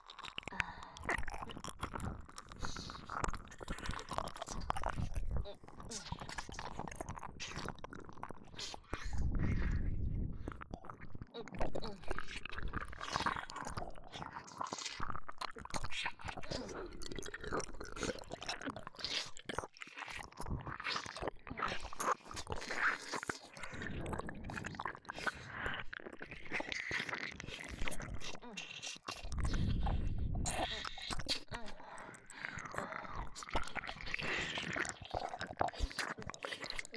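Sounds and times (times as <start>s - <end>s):
chewing and biting on an aged, pungent, rich food: 0.0s - 36.9s.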